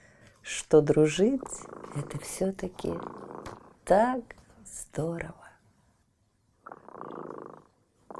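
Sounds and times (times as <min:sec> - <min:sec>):
speech: 0:00.7 - 0:03.2, 0:03.9 - 0:05.4
cat purring: 0:00.9 - 0:04.2, 0:06.6 - 0:08.1.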